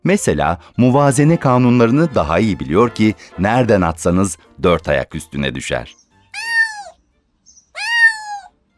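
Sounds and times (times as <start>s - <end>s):
speech: 0.0s - 6.0s
cat meowing with drawn-out tonal cries: 6.4s - 7.0s, 7.8s - 8.5s.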